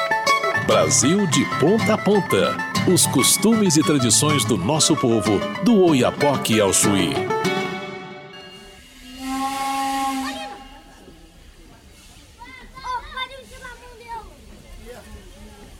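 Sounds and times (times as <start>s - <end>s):
chattering crowd of voices around a steam train: 0.0s - 8.0s, 10.0s - 15.7s
speech: 0.7s - 7.6s
steam locomotive whistle: 8.0s - 11.6s
hissing burst of steam from a steam locomotive starting to move: 8.5s - 15.7s.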